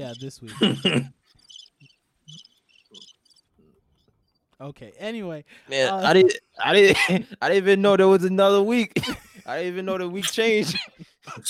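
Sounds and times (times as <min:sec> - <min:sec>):
speech: 0:00.0 - 0:01.6, 0:04.6 - 0:11.4
crickets chirping: 0:00.0 - 0:04.5.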